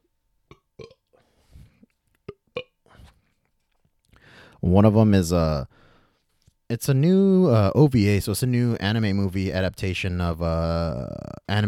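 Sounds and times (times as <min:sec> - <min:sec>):
person burping with clicky gulps: 0:00.5 - 0:01.2, 0:02.3 - 0:02.8
speech: 0:04.6 - 0:05.8, 0:06.7 - 0:11.6.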